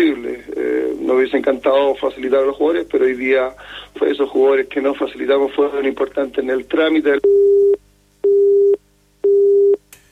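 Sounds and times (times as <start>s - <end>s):
speech: 1.1s - 7.7s
telephone busy signal after a call drops: 7.2s - 9.8s.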